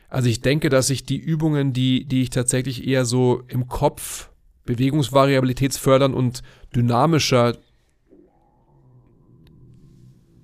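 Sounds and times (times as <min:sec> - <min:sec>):
speech: 0:00.1 - 0:07.6
stomach growling: 0:08.0 - 0:10.4.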